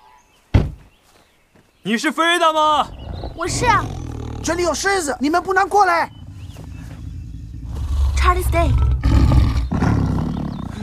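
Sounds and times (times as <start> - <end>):
speech: 1.8 - 6.2, 8.3 - 9.0
lion roaring: 2.7 - 10.8.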